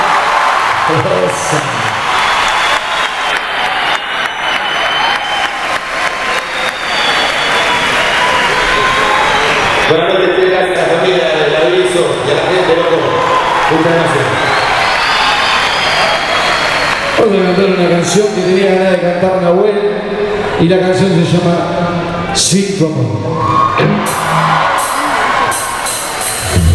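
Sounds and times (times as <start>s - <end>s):
concert audience whooping and cheering: 0.0s - 10.0s, 12.8s - 18.0s, 23.3s - 26.5s
concert audience applauding: 0.0s - 18.4s, 23.8s - 26.6s
speech: 0.9s - 2.0s, 13.7s - 14.5s, 17.3s - 24.4s.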